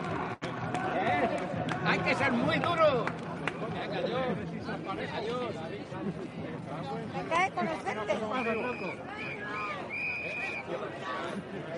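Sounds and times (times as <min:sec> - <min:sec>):
dense crowd chatter at the Plaza de Colon outdoors: 0:00.0 - 0:11.7
speech: 0:02.0 - 0:03.3, 0:03.9 - 0:11.7
whistles: 0:08.4 - 0:10.7.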